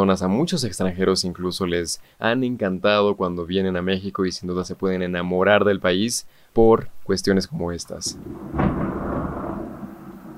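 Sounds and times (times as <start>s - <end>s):
speech: 0.0s - 8.7s
rainfall: 0.0s - 10.3s
deep rumble of thunder: 7.9s - 10.3s.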